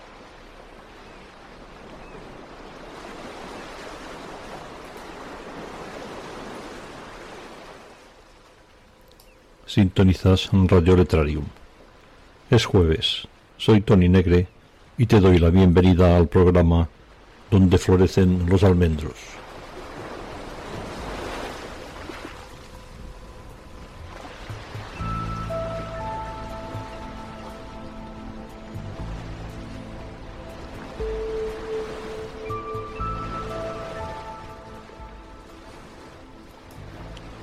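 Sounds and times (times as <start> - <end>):
Mediterranean Sea waves washing onto the shore of Mallorca, Spain: 0.0 - 37.4
speech: 9.7 - 11.6, 12.5 - 19.4
gentle melodic tune: 22.7 - 37.4.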